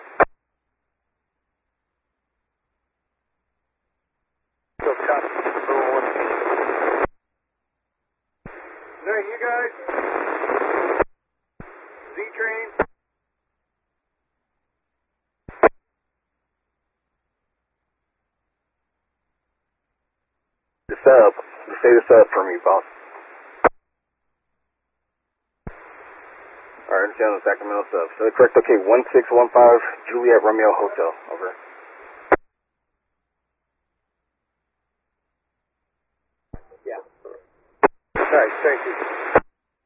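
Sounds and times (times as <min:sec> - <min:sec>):
harsh crackling radio static during two-way transmission: 0:00.0 - 0:00.3, 0:04.8 - 0:07.1, 0:08.5 - 0:12.9, 0:15.5 - 0:15.7, 0:20.9 - 0:23.8, 0:25.7 - 0:32.4, 0:36.6 - 0:39.5
speech: 0:21.1 - 0:23.0, 0:26.9 - 0:31.6, 0:38.3 - 0:39.3.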